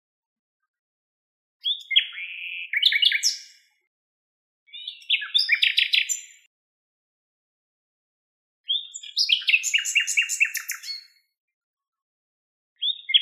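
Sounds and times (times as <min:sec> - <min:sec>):
common nightingale Luscinia megarhynchos singing: 0:01.6 - 0:03.7, 0:04.7 - 0:06.5, 0:08.7 - 0:11.2, 0:12.8 - 0:13.2.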